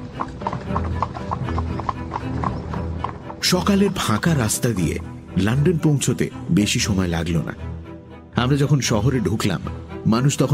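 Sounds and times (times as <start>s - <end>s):
hooves of a horse pulling a carriage clip-clopping: 0.0s - 4.9s
speech: 3.5s - 7.8s, 8.4s - 10.5s.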